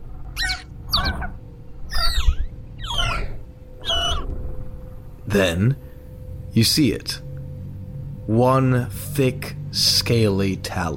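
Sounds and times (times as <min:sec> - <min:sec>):
deep gravelly green dragon chirping: 0:00.0 - 0:06.0
low rumbling background: 0:00.0 - 0:10.9
speech: 0:05.3 - 0:05.8, 0:06.6 - 0:07.2, 0:08.3 - 0:10.9.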